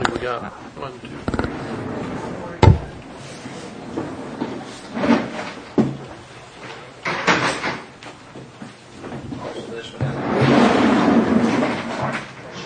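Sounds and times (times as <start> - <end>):
speech: 0.2 - 1.4
table or chair scraping drag: 1.2 - 5.7, 10.1 - 12.2
chairs and table knocking and thudding: 2.6 - 3.0.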